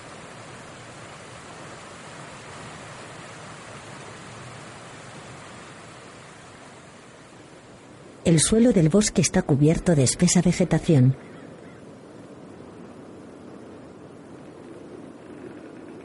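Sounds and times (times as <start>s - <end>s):
water pouring down a waterfall: 0.0s - 11.2s
speech: 8.3s - 11.3s.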